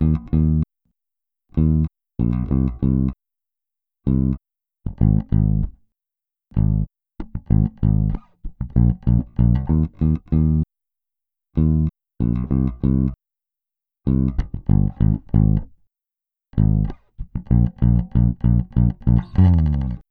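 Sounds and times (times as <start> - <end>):
clean bass: 0.0 - 0.6, 1.6 - 3.2, 4.1 - 5.8, 6.5 - 10.7, 11.6 - 13.2, 14.1 - 15.8, 16.6 - 20.1.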